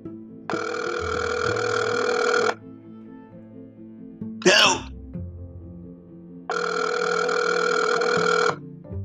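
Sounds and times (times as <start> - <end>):
speech: 0.5 - 0.7
telephone ringing unanswered: 0.5 - 2.6, 6.5 - 8.6.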